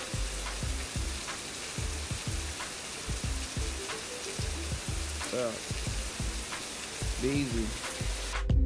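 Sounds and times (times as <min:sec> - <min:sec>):
steady rain falling outside a porch: 0:00.0 - 0:08.5
speech: 0:05.3 - 0:05.7, 0:07.2 - 0:07.9.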